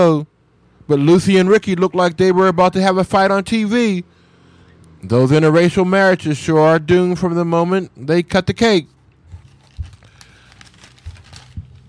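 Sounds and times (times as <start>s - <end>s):
speech: 0.0s - 0.3s, 0.9s - 4.2s, 5.0s - 9.0s
paper being shaken, rustling and crinkling: 9.3s - 11.8s.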